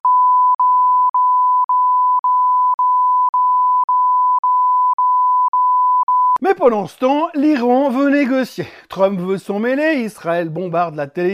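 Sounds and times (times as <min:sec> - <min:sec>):
high-pitched censorship bleep tone: 0:00.0 - 0:06.4
speech: 0:06.5 - 0:11.3.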